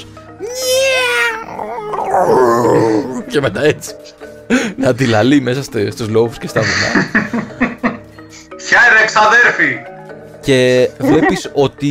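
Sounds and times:
person's voice imitating a giant cat's roar: 0.6s - 3.3s
speech: 2.2s - 2.4s, 3.3s - 7.6s, 9.1s - 11.8s
laughter: 6.4s - 8.1s, 11.0s - 11.6s.

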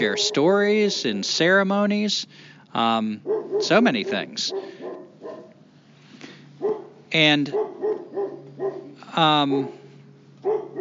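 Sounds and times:
drawn-out dog barks with rising harmonic whine: 0.0s - 0.6s, 3.2s - 5.6s, 6.6s - 10.8s
speech: 0.0s - 4.8s, 7.1s - 7.7s, 9.1s - 9.8s.

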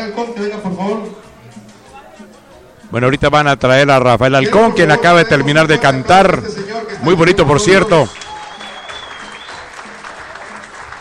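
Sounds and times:
speech: 0.0s - 1.7s, 2.9s - 8.2s
live audience applause: 8.1s - 10.9s.

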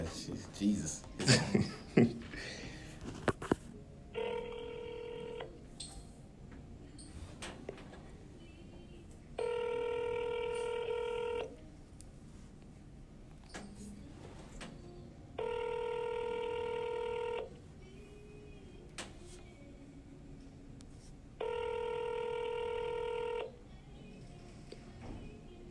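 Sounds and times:
speech: 0.0s - 2.1s
faint low room hum: 0.0s - 25.6s
laughter: 1.2s - 2.7s
outgoing phone call ringing: 4.1s - 5.8s, 9.4s - 11.6s, 15.4s - 17.6s, 21.4s - 23.6s.

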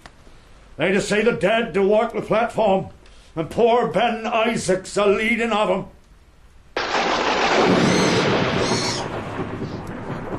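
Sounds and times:
speech: 0.8s - 6.0s
thunderclap rolling into rumbling roar in a storm: 6.8s - 10.3s.

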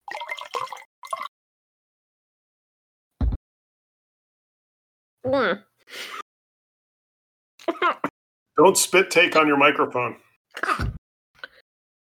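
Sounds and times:
wine splashing and gurgling into a glass: 0.0s - 1.3s
speech: 5.3s - 6.2s, 8.6s - 10.8s.

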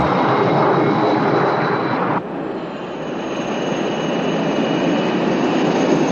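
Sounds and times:
private jet aircraft roaring in flight: 0.0s - 6.1s.

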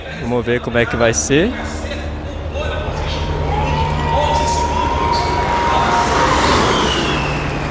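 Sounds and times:
murmuring voices: 0.0s - 7.4s
crowd noise: 0.0s - 7.6s
speech: 0.2s - 2.0s
Formula E electric race car whizzing by: 3.0s - 7.6s.

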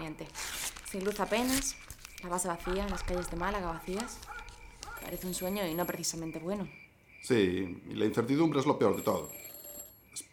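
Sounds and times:
speech: 0.1s - 4.3s, 5.0s - 9.5s
office telephone ringing with an electronic trill: 5.0s - 6.3s, 8.7s - 10.2s.

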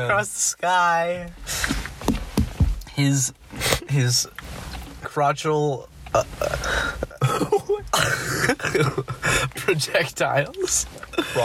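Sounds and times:
speech: 0.0s - 2.2s, 3.0s - 4.5s, 5.2s - 6.6s, 8.7s - 11.4s
person with a mild cough coughing: 6.4s - 9.6s.

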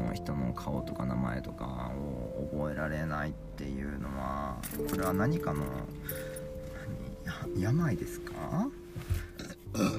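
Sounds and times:
speech: 0.1s - 6.3s, 7.3s - 9.1s, 9.8s - 9.9s
drawn-out rumbling burp: 9.4s - 9.9s.

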